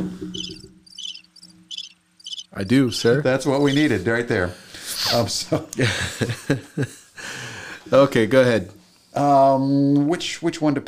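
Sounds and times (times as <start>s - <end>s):
crickets chirping in high trilling pulses: 0.3s - 3.9s
speech: 2.6s - 7.0s, 7.9s - 10.8s
laughter: 5.5s - 7.1s.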